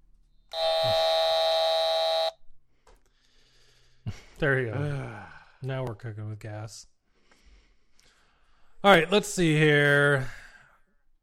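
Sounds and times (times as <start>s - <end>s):
loud steady electronic buzzer: 0.5s - 2.4s
speech: 4.4s - 6.9s, 8.8s - 10.4s.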